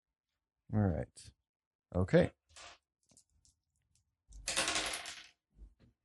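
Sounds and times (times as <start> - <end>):
speech: 0.7 - 2.8
dice clattering across a hard tabletop: 4.3 - 5.4.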